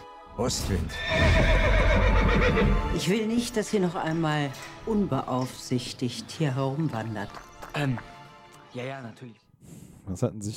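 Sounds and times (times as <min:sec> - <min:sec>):
speech: 0:00.4 - 0:08.1, 0:08.7 - 0:10.5
horse neighing: 0:00.9 - 0:03.0.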